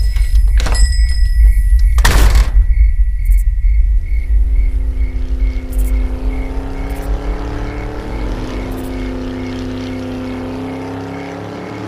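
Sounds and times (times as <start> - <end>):
insects chirping: 0.0 - 11.8
van engine approaching: 3.7 - 11.8.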